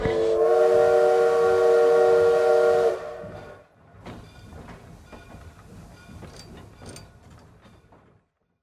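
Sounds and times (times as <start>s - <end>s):
train horn: 0.0s - 3.7s
passing train rolling along the tracks: 0.0s - 8.4s.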